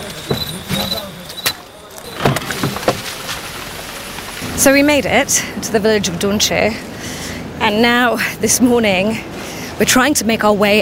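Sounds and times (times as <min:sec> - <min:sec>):
clunks, knocks and rattles of a truck on a muddy road: 0:00.0 - 0:03.6
constant rough noise: 0:00.0 - 0:10.8
truck driving along a muddy narrow winding road: 0:00.0 - 0:10.8
speech: 0:04.6 - 0:06.9, 0:07.6 - 0:10.8.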